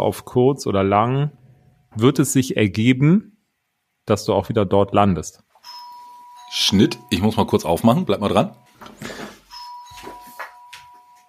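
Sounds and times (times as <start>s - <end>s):
speech: 0.0s - 1.4s, 2.0s - 3.3s, 4.0s - 5.5s, 6.5s - 9.1s
doorbell chiming with a sustained electronic tone: 5.6s - 11.2s.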